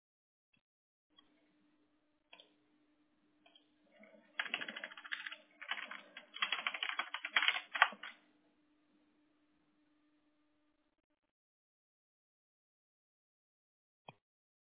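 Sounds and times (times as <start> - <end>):
faint low hum: 1.2 - 11.3
typing on a computer keyboard: 4.4 - 8.2.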